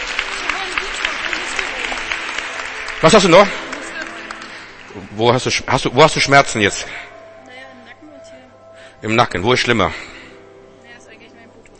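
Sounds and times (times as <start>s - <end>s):
church congregation clapping: 0.0s - 7.0s
speech: 3.0s - 3.7s, 5.0s - 7.1s, 9.0s - 10.1s.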